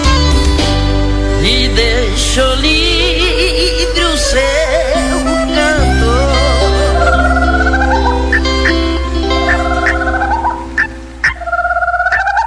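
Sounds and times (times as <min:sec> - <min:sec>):
musical backing with a steady low drone: 0:00.0 - 0:12.4
speech: 0:01.4 - 0:03.0
guinea fowl crying: 0:04.9 - 0:12.4.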